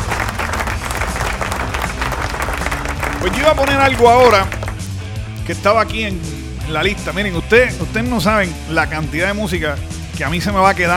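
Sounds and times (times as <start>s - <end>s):
applause of many hands clapping for listeners: 0.0s - 5.5s
speech: 3.2s - 4.6s, 5.5s - 10.9s.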